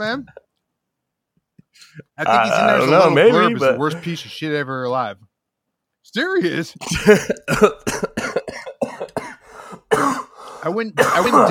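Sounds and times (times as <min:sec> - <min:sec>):
speech: 0:00.0 - 0:00.4, 0:01.8 - 0:05.3, 0:06.0 - 0:08.2, 0:10.6 - 0:11.4
harsh coughing: 0:06.8 - 0:11.4
wheezy breaths: 0:09.3 - 0:10.7.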